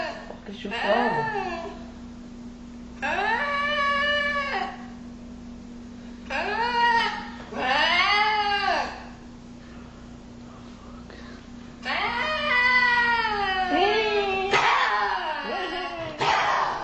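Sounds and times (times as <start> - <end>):
steady low hum: 0.0 - 16.8
speech: 0.5 - 1.8, 3.0 - 3.3
Eurasian lynx meow-like yowls: 3.0 - 5.0, 6.3 - 9.2, 11.8 - 16.8.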